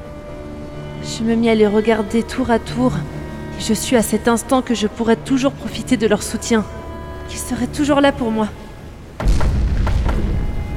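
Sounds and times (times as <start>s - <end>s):
speech: 1.0s - 8.6s
heavy low rumble: 9.2s - 10.7s
meteorite crashing to the ground with booming explosion: 9.2s - 10.7s
sharp crackling bursts: 9.2s - 10.7s.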